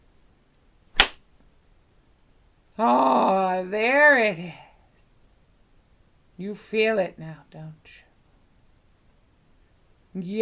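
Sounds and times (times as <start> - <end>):
sharp whip crack: 1.0 - 1.3
speech: 2.8 - 4.6, 6.4 - 8.1, 10.2 - 10.4.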